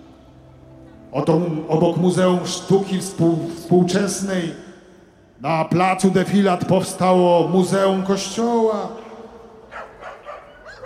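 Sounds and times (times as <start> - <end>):
speech: 1.1 - 4.7, 5.4 - 9.0
dog barking: 9.7 - 10.8.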